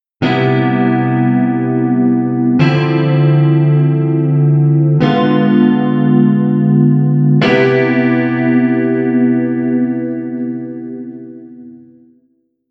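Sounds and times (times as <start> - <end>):
chord progression: 0.2 - 12.0.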